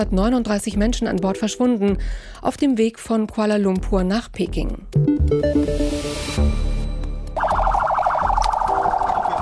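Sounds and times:
speech: 0.0s - 6.5s
ambulance siren in Abuja Nigeria on its way to an attack site: 7.4s - 9.3s.

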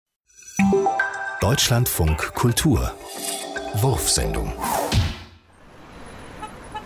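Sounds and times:
speech: 1.4s - 4.8s
road traffic at a roundabout with cars, a bicycle and a horse cart: 2.8s - 6.8s.

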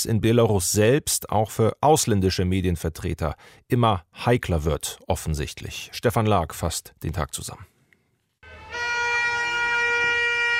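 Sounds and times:
speech: 0.0s - 7.7s
car horns honking in solidarity: 8.4s - 10.5s.

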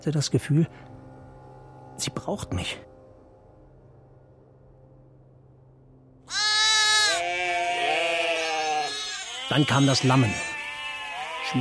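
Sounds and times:
speech: 0.0s - 1.0s, 2.0s - 2.9s, 9.5s - 10.5s
sheep bleating: 6.3s - 11.5s.

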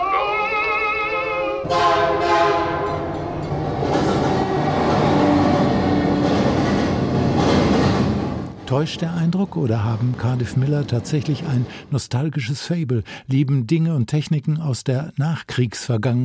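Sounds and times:
train horn blaring with wavering harmonic tones: 0.0s - 6.2s
train rumbling past with roar of wheels and rattling cars: 1.6s - 12.0s
speech: 8.7s - 16.2s.

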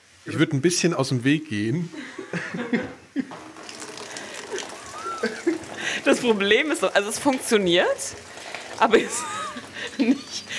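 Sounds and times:
speech: 0.2s - 2.9s, 6.0s - 10.5s
people chuckling: 1.9s - 6.4s, 9.0s - 10.5s
tap water pouring over shovel into bucket: 3.3s - 10.5s.

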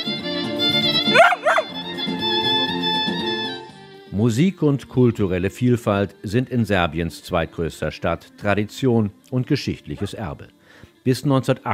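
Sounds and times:
droning instrumental music by a street musician in a shopping street: 0.7s - 3.7s
dog barking: 1.1s - 1.8s
speech: 4.3s - 11.7s.

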